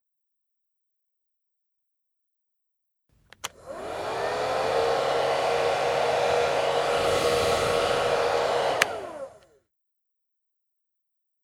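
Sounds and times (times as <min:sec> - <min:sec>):
hair dryer running: 0:03.3 - 0:09.6.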